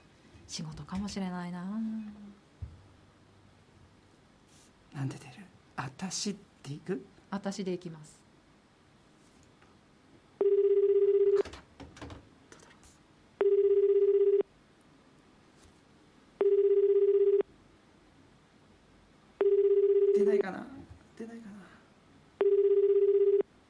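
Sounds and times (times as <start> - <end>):
speech: 0.5 - 2.4, 5.0 - 8.2
ringback tone of an outgoing phone call: 10.4 - 11.4, 13.4 - 14.5, 16.4 - 17.5, 19.4 - 20.3, 22.4 - 23.5.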